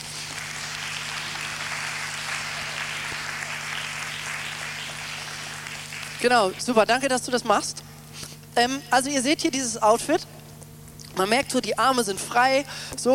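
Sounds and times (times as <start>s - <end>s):
audience applause: 0.0s - 6.6s
faint low hum: 0.0s - 13.1s
speech: 6.2s - 7.9s, 8.6s - 10.4s, 11.2s - 13.1s.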